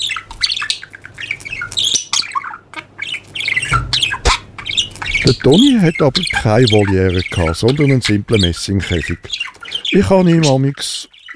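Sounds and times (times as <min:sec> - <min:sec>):
budgerigar squawking and chirping: 0:00.0 - 0:11.3
speech: 0:05.3 - 0:11.3.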